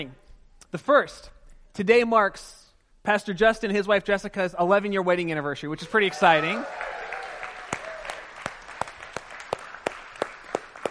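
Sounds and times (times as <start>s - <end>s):
speech: 0.0s - 6.9s
audience applauding: 6.0s - 10.8s.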